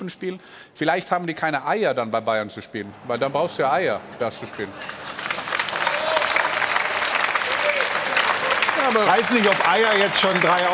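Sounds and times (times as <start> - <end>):
speech: 0.0 - 5.1, 8.9 - 10.7
studio audience applause: 4.4 - 10.7.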